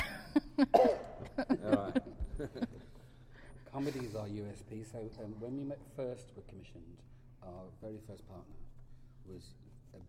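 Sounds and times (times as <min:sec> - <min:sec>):
person coughing: 0:00.0 - 0:01.5
laughter: 0:00.0 - 0:03.2
speech: 0:00.6 - 0:02.8, 0:03.8 - 0:10.0.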